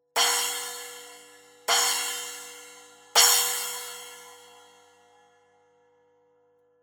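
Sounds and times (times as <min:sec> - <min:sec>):
splash cymbal hits: 0:00.2 - 0:04.9.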